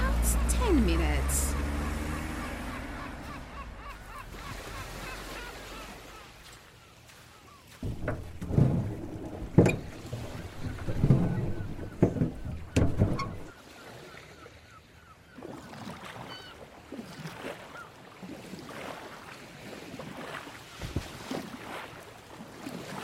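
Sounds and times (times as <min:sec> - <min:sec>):
boat engine rumbling on open water: 0:00.0 - 0:06.4, 0:07.8 - 0:13.6
water splashing: 0:00.0 - 0:14.1, 0:15.4 - 0:23.0
wind: 0:00.0 - 0:23.0.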